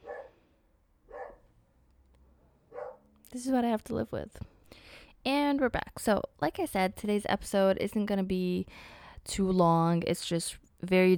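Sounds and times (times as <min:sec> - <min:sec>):
dog barking at pedestrians: 0:00.0 - 0:00.4, 0:01.1 - 0:01.5, 0:02.7 - 0:03.1
speech: 0:03.3 - 0:04.5, 0:05.5 - 0:11.1.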